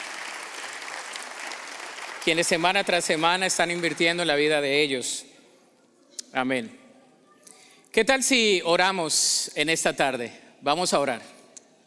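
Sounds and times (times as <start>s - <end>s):
church audience applauding: 0.0s - 4.5s
speech: 2.2s - 5.3s, 6.3s - 6.8s, 8.0s - 11.4s.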